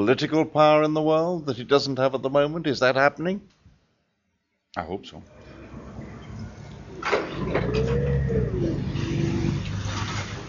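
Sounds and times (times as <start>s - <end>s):
speech: 0.0s - 3.6s, 4.7s - 5.4s
forklift trucks rumbling and whining in a port: 5.3s - 10.4s.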